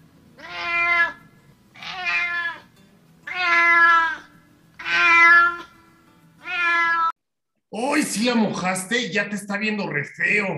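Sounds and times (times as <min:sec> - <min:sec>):
cat meowing with a strained complaining tone: 0:00.4 - 0:05.8, 0:06.4 - 0:07.2
speech: 0:08.2 - 0:10.5.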